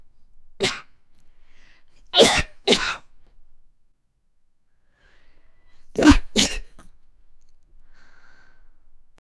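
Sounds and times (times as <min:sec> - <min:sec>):
person sneezing: 0:02.2 - 0:03.0, 0:05.9 - 0:06.9.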